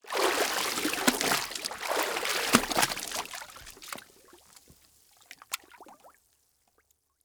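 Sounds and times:
towel dunking under water: 0.1 - 4.0
wet towel dripping water: 0.1 - 6.0.

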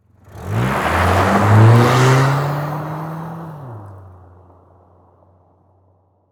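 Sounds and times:
Saturn car peeling out on a dirt road: 0.1 - 4.2.

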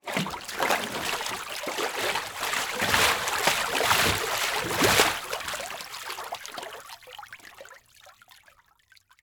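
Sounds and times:
liquid water splash movements: 0.0 - 6.9.

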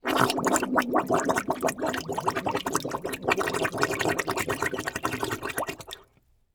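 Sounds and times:
water gargling underwater: 0.0 - 6.0.

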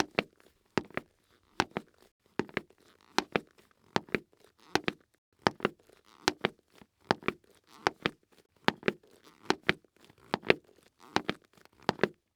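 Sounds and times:
footsteps walking on cement in cleats: 0.0 - 12.2.

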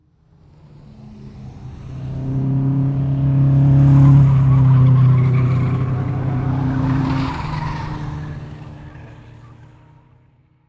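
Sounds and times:
multiple distant race cars driving by: 0.1 - 10.5.

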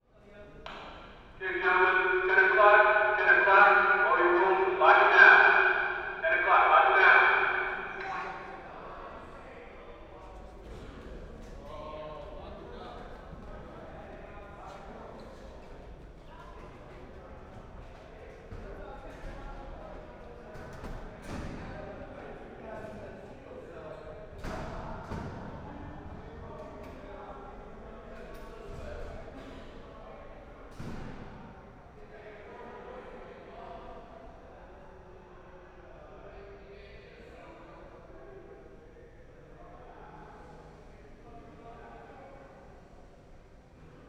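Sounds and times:
ambience during lockdown: 1.4 - 8.6.

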